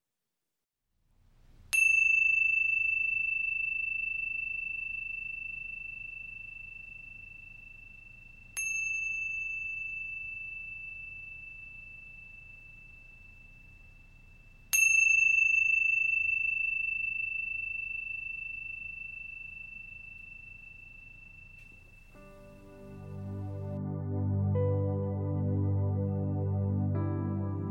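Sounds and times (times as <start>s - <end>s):
meditation chime ringing: 1.7s - 24.0s
soft low music: 21.9s - 27.6s.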